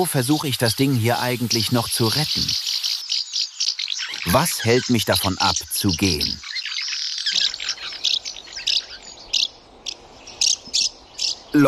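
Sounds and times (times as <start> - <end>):
speech: 0.0 - 2.6, 4.2 - 6.5
house martin calls: 0.0 - 11.6.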